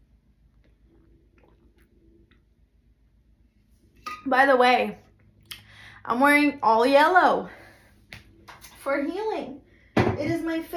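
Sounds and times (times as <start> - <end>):
low steady rumble: 0.0 - 10.7
soft wet mouth clicks and gulps: 0.4 - 2.7, 5.2 - 5.7
person sipping water: 0.7 - 2.4
speech: 4.2 - 5.0, 6.0 - 7.6, 8.8 - 9.6, 10.2 - 10.7.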